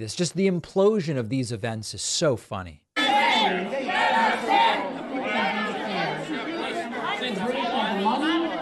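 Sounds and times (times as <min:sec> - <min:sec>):
speech: 0:00.0 - 0:02.8
large crowd shouting outside an oversold speech event in heat: 0:03.0 - 0:08.6
people yelling: 0:03.0 - 0:08.6.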